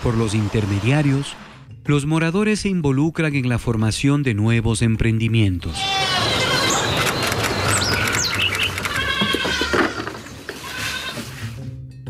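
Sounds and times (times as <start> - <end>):
speech: 0.0 - 6.0
goats bleating in a stable: 5.6 - 7.1, 8.4 - 11.6.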